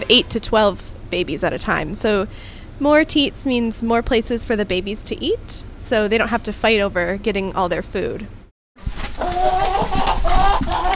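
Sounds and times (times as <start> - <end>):
speech: 0.1 - 9.6
hens clucking in a chicken coop on a farm: 8.9 - 10.9.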